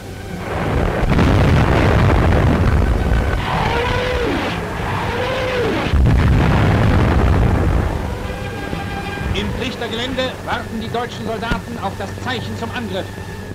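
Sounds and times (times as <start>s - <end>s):
artillery barrage of heavy overlapping explosions: 0.0s - 13.2s
speech: 11.0s - 13.3s.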